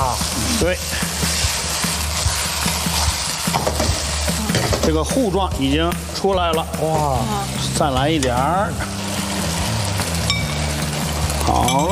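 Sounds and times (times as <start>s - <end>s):
shredded eel stir-fried in a wok sizzling: 0.0s - 11.9s
speech: 0.6s - 1.1s, 4.8s - 9.0s, 11.5s - 11.9s
utensil tapping against the wok: 3.5s - 5.0s.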